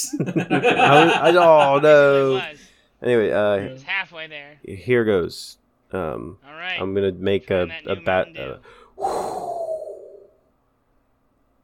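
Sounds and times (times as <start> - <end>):
laughter: 0.0 - 2.5
speech: 0.0 - 9.5
loud breathy exhale after chugging soda: 8.7 - 10.4.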